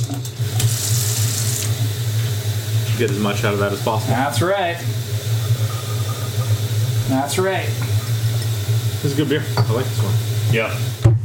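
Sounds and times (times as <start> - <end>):
tap water splashing into a sink: 0.0 - 11.2
speech: 3.0 - 5.2, 7.1 - 7.9, 9.0 - 11.0.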